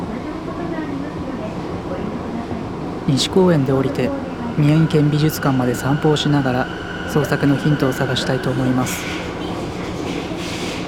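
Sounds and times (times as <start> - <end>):
rumble and rattle of a moving subway car: 0.0 - 10.8
speech: 3.1 - 9.3
faint indistinct voices murmuring: 3.1 - 10.2.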